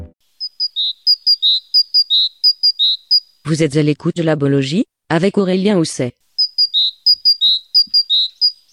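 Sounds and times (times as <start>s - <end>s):
great tit singing: 0.4s - 3.5s, 6.2s - 8.7s
speech: 3.5s - 6.2s.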